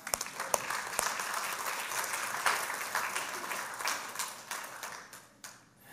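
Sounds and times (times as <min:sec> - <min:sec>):
audience applauding: 0:00.0 - 0:05.6.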